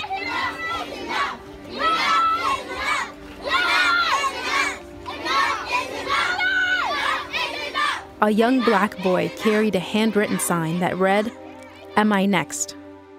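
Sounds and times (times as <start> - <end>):
crowd of children chanting in unison at a protest march: 0.0 - 12.0
speech: 8.2 - 11.4, 12.0 - 12.8.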